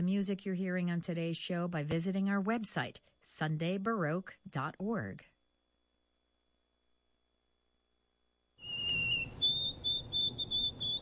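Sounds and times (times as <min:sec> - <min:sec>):
speech: 0:00.0 - 0:05.3
white-throated sparrow song: 0:08.6 - 0:10.9.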